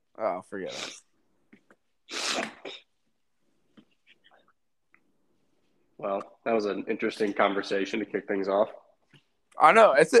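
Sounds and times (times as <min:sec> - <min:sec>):
speech: 0:00.2 - 0:01.0, 0:06.0 - 0:08.8, 0:09.6 - 0:10.1
person sneezing: 0:02.1 - 0:03.0.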